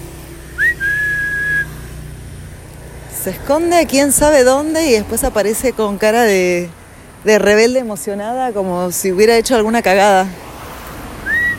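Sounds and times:
person whistling a two-part call to a pet: 0.5s - 1.8s, 11.2s - 11.5s
speech: 3.2s - 10.5s.

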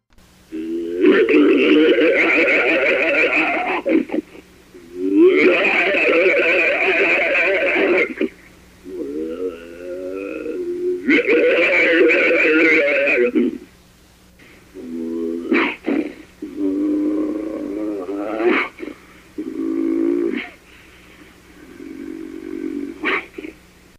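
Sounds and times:
unidentified creature snarling and growling: 0.5s - 4.2s, 4.8s - 13.6s, 14.8s - 20.6s, 21.6s - 23.6s
laughter: 1.1s - 4.4s, 5.4s - 8.3s, 11.2s - 13.4s.

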